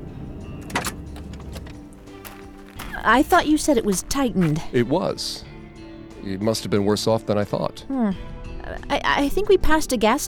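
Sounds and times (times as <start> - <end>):
car pulling up with low engine rumble: 0.0 - 3.9
speech: 3.0 - 5.5, 6.2 - 10.2.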